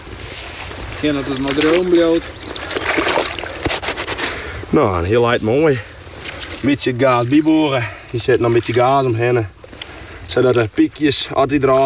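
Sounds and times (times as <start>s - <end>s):
object lowered into water splashing and sloshing: 0.0s - 11.8s
speech: 1.0s - 2.5s, 4.7s - 5.9s, 6.6s - 9.6s, 10.3s - 11.8s
sharp splash: 1.1s - 4.0s.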